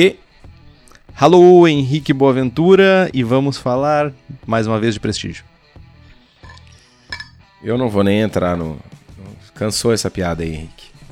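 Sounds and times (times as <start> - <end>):
speech: 0.0 - 0.2, 1.2 - 5.5, 7.6 - 9.0, 9.6 - 10.9
ice cubes clinking in a glass: 6.4 - 7.4.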